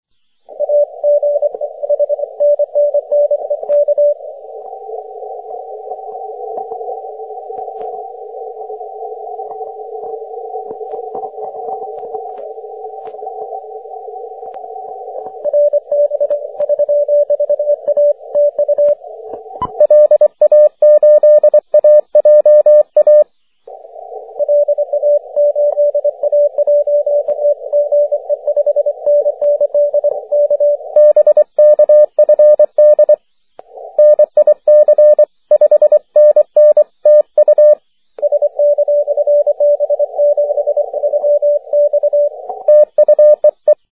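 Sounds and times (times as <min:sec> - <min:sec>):
30m band CW morse code tones: 0:00.6 - 0:04.2, 0:15.0 - 0:23.2, 0:24.4 - 0:33.2, 0:34.0 - 0:43.9.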